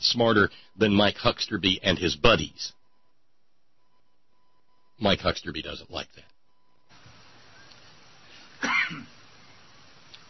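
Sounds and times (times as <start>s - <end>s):
hiss: 0.0s - 10.2s
speech: 0.1s - 2.8s, 5.0s - 6.3s
person coughing: 8.6s - 9.2s.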